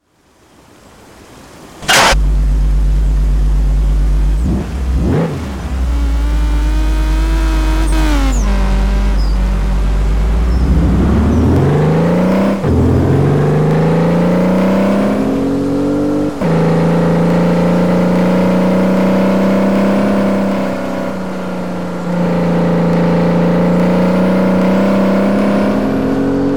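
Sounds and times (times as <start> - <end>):
Audi TT car: 0.0 - 26.5.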